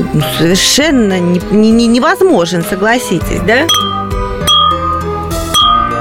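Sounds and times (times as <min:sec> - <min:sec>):
speech: 0:00.2 - 0:04.0
champagne glasses clinking in a toast: 0:03.7 - 0:04.9, 0:05.6 - 0:05.9.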